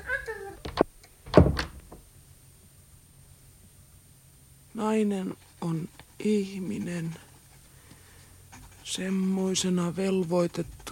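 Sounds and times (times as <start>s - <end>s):
door closing thud: 0.7s - 2.0s
door knocks and rattles: 1.3s - 2.0s
speech: 4.8s - 7.3s, 8.9s - 10.8s.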